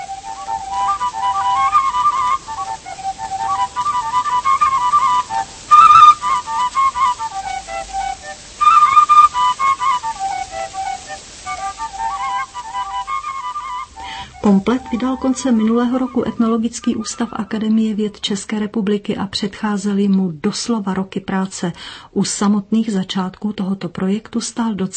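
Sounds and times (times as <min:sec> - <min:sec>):
shepherd playing highland folk songs on a double fipple flute in Velky Lom: 0:00.0 - 0:18.1
speech: 0:14.5 - 0:24.9.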